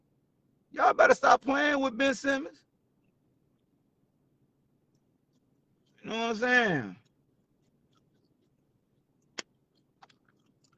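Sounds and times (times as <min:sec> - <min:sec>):
low hiss: 0:00.0 - 0:10.7
speech: 0:00.7 - 0:02.6, 0:06.0 - 0:07.0
gum chewing with wet smacking mouth sounds: 0:07.0 - 0:10.7
gum snaps: 0:09.2 - 0:10.7.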